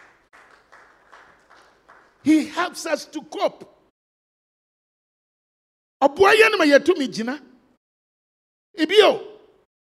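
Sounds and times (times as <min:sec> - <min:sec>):
audience clapping: 0:00.0 - 0:02.7
speech: 0:02.2 - 0:03.8, 0:06.0 - 0:07.5, 0:08.8 - 0:09.3.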